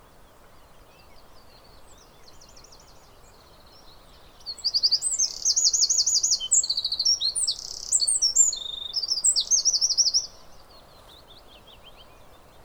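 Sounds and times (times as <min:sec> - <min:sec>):
faint low hiss: 0:00.0 - 0:12.6
Eurasian wren singing shrill trills: 0:04.5 - 0:10.4.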